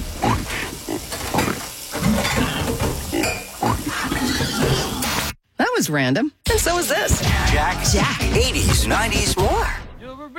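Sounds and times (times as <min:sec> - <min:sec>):
pig grunting and snorting: 0:00.0 - 0:05.2
dishes, pots and cutlery clattering: 0:01.0 - 0:03.6
speech: 0:05.9 - 0:10.3.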